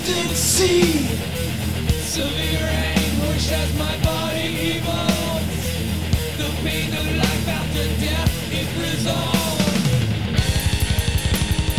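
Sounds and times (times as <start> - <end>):
heavy metal guitar riff with thick distortion: 0.0 - 11.7
speech: 0.1 - 5.5
pounding drums: 9.4 - 11.7.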